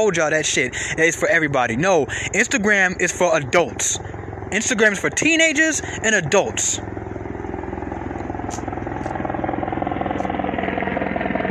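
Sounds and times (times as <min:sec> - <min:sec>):
speech: 0:00.0 - 0:07.0
helicopter flying overhead: 0:00.0 - 0:11.4.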